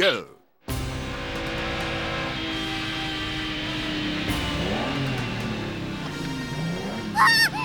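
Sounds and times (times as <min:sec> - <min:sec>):
speech: 0:00.0 - 0:00.3
car engine drone: 0:00.8 - 0:07.6.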